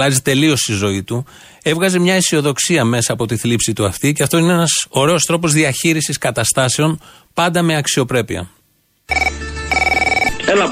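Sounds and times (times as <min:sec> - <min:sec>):
speech: 0:00.0 - 0:09.4, 0:10.5 - 0:10.7
telephone ringing in trilling bursts: 0:09.1 - 0:10.6.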